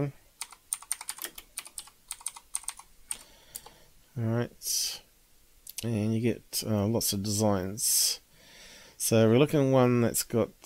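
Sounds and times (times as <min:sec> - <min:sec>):
speech: 0:00.0 - 0:00.2, 0:04.2 - 0:05.0, 0:05.8 - 0:08.2, 0:09.0 - 0:10.6
typing on a computer keyboard: 0:00.4 - 0:03.7.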